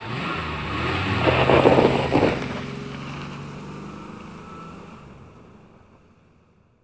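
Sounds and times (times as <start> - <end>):
car driving away: 0.0 - 6.6.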